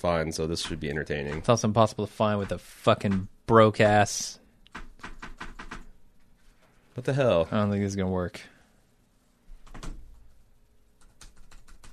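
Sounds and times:
speech: 0:00.0 - 0:05.1, 0:07.0 - 0:08.5
typing on a computer keyboard: 0:00.5 - 0:03.4, 0:04.7 - 0:05.9, 0:09.6 - 0:10.3, 0:11.0 - 0:11.9.

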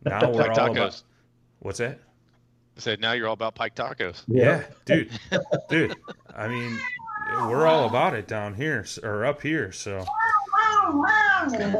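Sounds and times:
laughter: 0:00.0 - 0:00.8, 0:05.1 - 0:06.8
speech: 0:00.0 - 0:02.1, 0:02.8 - 0:10.2, 0:10.8 - 0:11.7
cat meowing long and whiny: 0:06.5 - 0:07.9, 0:10.1 - 0:11.7.

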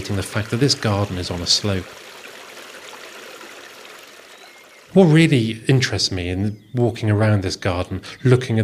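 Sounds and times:
speech: 0:00.0 - 0:02.1, 0:05.0 - 0:08.6
shallow water trickling along a narrow garden rill: 0:00.0 - 0:05.4.

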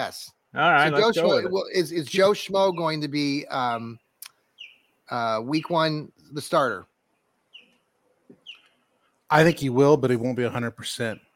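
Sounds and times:
speech: 0:00.0 - 0:04.0, 0:05.1 - 0:06.9, 0:09.3 - 0:11.3
bird chirps outdoors: 0:02.2 - 0:05.9, 0:07.1 - 0:09.8.

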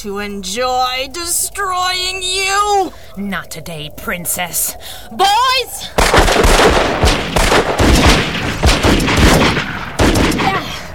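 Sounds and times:
speech: 0:00.0 - 0:08.6
volley of gunshots: 0:06.0 - 0:10.9.

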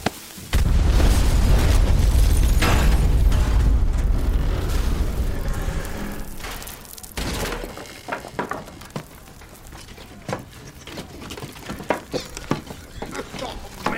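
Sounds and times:
debris crackling: 0:00.0 - 0:13.9
pipe bomb explosion: 0:00.5 - 0:07.6.

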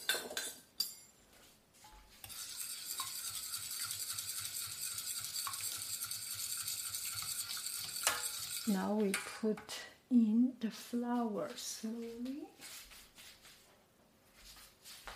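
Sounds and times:
fork mixing a cooled mixture with scraping and clinking: 0:02.2 - 0:08.8
speech: 0:08.7 - 0:12.7.

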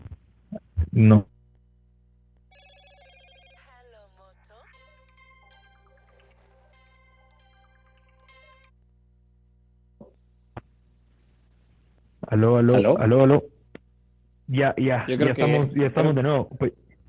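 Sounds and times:
low steady hum: 0:00.0 - 0:17.0
speech: 0:01.0 - 0:01.3, 0:12.4 - 0:13.6, 0:14.5 - 0:16.8
phone ringtone with chiming melody: 0:02.5 - 0:08.7.

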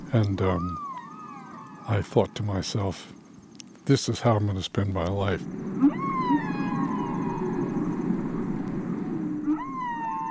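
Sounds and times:
whale calls: 0:00.0 - 0:02.9, 0:05.4 - 0:10.2
speech: 0:00.1 - 0:00.8, 0:01.9 - 0:03.2, 0:03.9 - 0:06.0.

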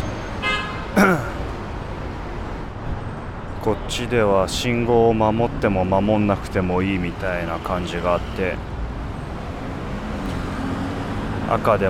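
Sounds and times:
street traffic noise in southern Manhattan: 0:00.0 - 0:11.8
car horn honks in southern Manhattan street traffic: 0:00.4 - 0:00.9
speech: 0:03.6 - 0:08.7, 0:11.5 - 0:11.8.

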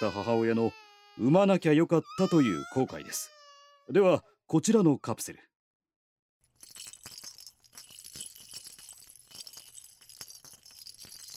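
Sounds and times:
speech: 0:00.0 - 0:05.5
baby rattle being shaken: 0:06.5 - 0:11.3.

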